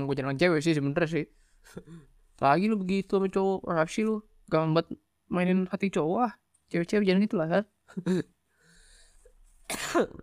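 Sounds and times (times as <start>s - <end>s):
speech: 0.0s - 8.3s, 9.7s - 10.2s
harsh coughs: 9.7s - 10.2s.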